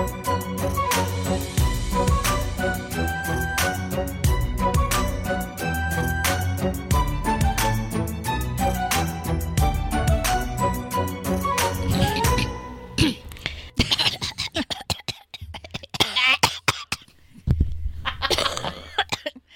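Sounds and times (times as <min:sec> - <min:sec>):
musical tones: 0:00.1 - 0:13.4
person coughing: 0:12.0 - 0:17.1, 0:18.2 - 0:19.4.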